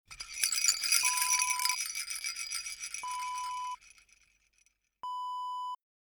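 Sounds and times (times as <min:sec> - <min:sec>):
baby rattle: 0:00.0 - 0:04.2.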